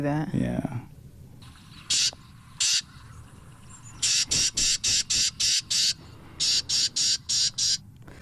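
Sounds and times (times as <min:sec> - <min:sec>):
Carolina Wren harsh raspy scolding call: 0:01.5 - 0:07.8.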